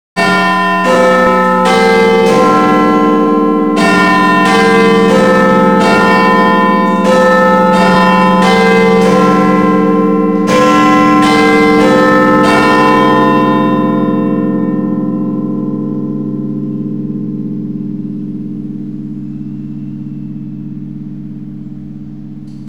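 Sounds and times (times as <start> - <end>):
Big Ben clock bell striking the hour: 0.2 - 22.6.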